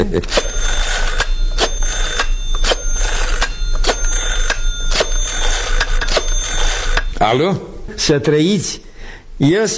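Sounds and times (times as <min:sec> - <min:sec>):
speech: 0:00.0 - 0:00.6, 0:07.2 - 0:09.7
telephone ringing tone on the line: 0:00.3 - 0:07.4.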